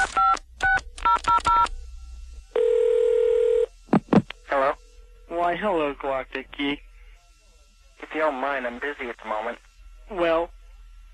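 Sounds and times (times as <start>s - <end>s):
touch-tone beeps of a phone number being dialed: 0.0s - 1.7s
steady loud phone ringing tone on the line: 2.6s - 3.7s
speech: 5.6s - 6.9s, 8.1s - 10.6s.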